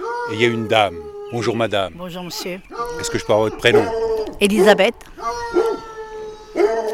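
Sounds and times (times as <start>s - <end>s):
dog howling in long wavering tones: 0.0s - 6.9s
speech: 0.3s - 5.4s.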